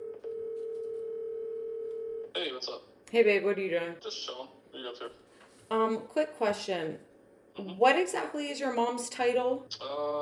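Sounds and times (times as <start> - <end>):
steady telephone tone of a call ringing out: 0.0 - 2.3
speech: 2.4 - 10.1.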